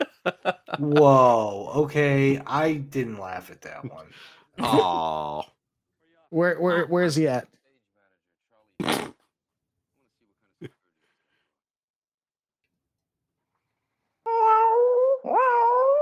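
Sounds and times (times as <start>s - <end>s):
laughter: 0.0s - 1.5s
speech: 0.2s - 5.6s, 6.3s - 7.6s
cat meowing: 14.3s - 16.0s.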